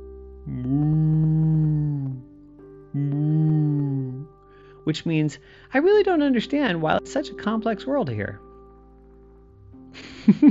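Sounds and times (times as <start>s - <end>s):
human voice imitating a cow mooing: 0.5s - 2.2s, 3.0s - 4.3s
speech: 4.9s - 8.4s, 10.3s - 10.4s.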